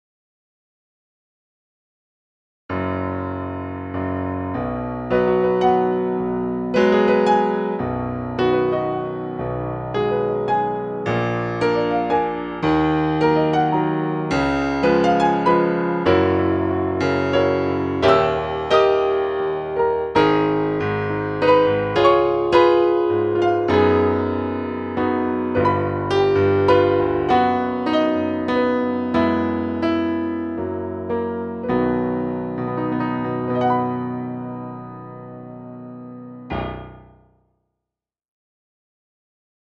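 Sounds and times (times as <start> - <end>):
piano accompaniment track for an audition: 2.7 - 37.4.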